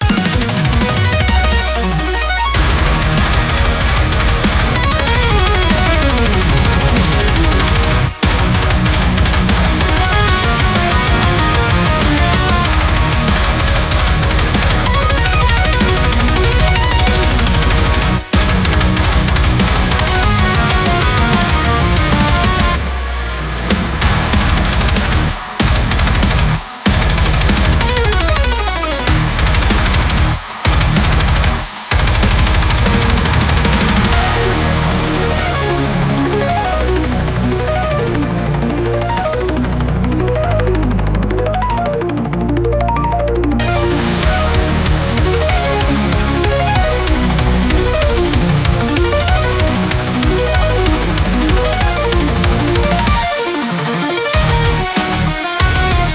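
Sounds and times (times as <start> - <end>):
95bpm music loop in E: 0.0 - 56.1.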